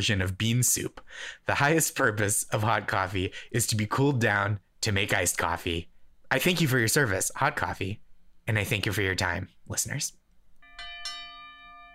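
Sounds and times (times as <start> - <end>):
speech: 0.0 - 10.2
timer bell dinging: 10.6 - 11.9.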